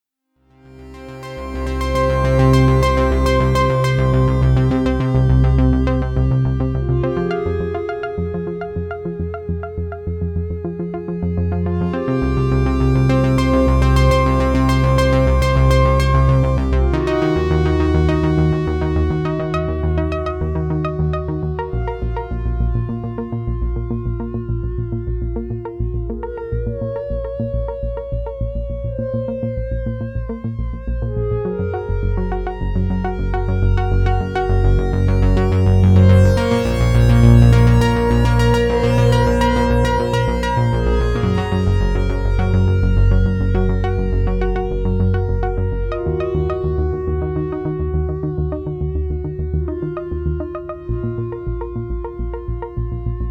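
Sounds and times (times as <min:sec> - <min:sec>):
synthesizer split arpeggio lead: 0:00.5 - 0:53.2.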